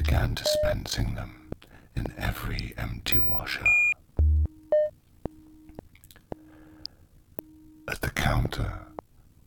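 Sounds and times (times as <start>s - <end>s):
speech: 0.1s - 3.9s, 7.9s - 8.9s
slow wet gum chewing: 5.7s - 6.4s.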